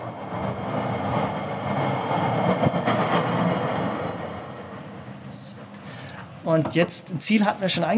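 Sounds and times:
automated rail cabin rumbling along its track past a siding and a workshop: 0.0s - 5.8s
speech: 6.5s - 7.9s.

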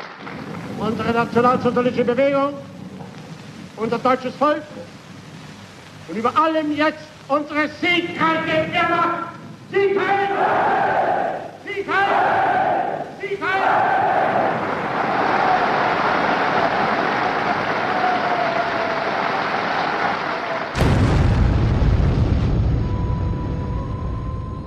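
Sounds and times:
loud bomb blast in a hall: 0.0s - 3.8s, 20.7s - 24.6s
speech: 0.2s - 2.7s, 3.8s - 5.0s, 6.1s - 14.6s
large crowd cheering and chanting in a reverberant hall after a speech: 9.7s - 20.8s.

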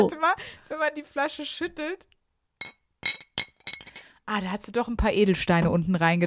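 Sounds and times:
speech: 0.0s - 2.8s, 4.3s - 6.2s
two drinking glasses clinking together: 2.6s - 4.1s.

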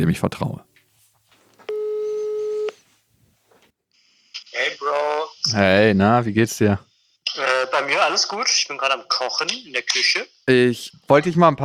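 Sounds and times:
speech: 0.0s - 0.7s, 4.6s - 11.6s
telephone ringing tone while calling a friend: 1.7s - 2.8s.

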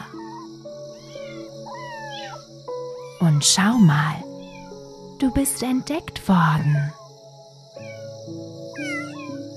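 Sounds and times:
kitten meowing: 0.0s - 3.2s, 4.4s - 4.7s, 7.8s - 8.1s, 8.8s - 9.4s
speech: 3.2s - 4.3s, 5.2s - 7.0s.

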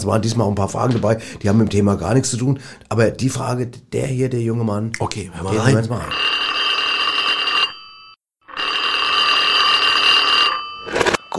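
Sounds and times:
speech: 0.0s - 6.5s
telephone ringing as a call goes to an answering machine: 5.6s - 11.3s.

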